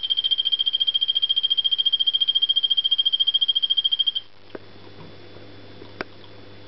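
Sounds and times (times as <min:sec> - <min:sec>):
male Golfodulcean poison frog Phyllobates vittatus calling: 0:00.0 - 0:04.3.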